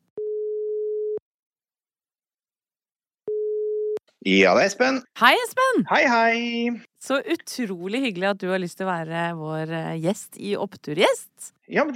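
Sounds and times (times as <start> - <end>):
telephone ringing tone while placing a call: 0.2 - 1.2, 3.3 - 4.0
speech: 4.2 - 11.9.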